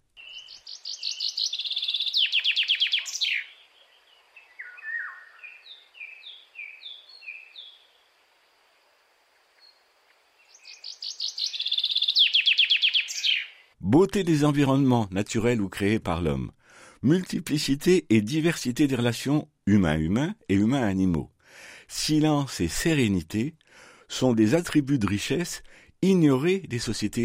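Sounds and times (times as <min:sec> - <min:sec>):
other birds chirping: 0:00.1 - 0:08.0, 0:10.4 - 0:13.8
common chaffinch singing descending trills: 0:00.2 - 0:07.9, 0:10.4 - 0:13.8
speech: 0:13.9 - 0:21.3, 0:21.9 - 0:27.2.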